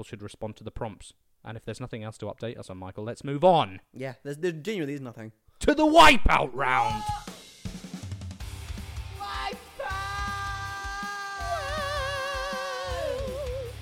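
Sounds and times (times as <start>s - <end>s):
speech: 0.0s - 7.2s
person screaming in a quiz round intro jingle: 6.5s - 7.3s, 9.2s - 13.7s
thumping musical backing: 6.8s - 13.8s.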